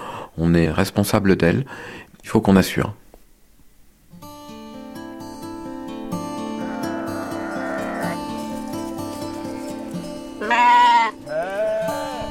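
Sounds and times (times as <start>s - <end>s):
speech: 0.4s - 3.0s
flock of ewes bleating: 6.4s - 8.4s, 10.0s - 12.2s.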